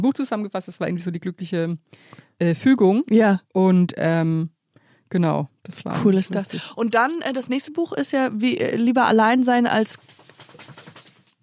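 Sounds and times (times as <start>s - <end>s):
speech: 0.0s - 10.9s
faint metallic jingle: 9.7s - 11.4s
dog shaking itself off: 10.0s - 11.3s.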